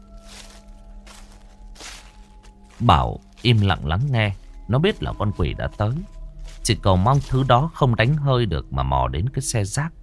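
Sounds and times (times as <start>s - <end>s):
footsteps crunching over gravel: 0.0s - 8.4s
speech: 2.8s - 10.0s.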